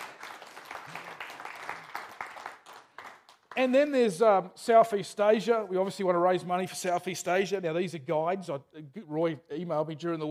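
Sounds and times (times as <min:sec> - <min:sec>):
crowd applauding: 0:00.0 - 0:03.7
speech: 0:03.6 - 0:10.2.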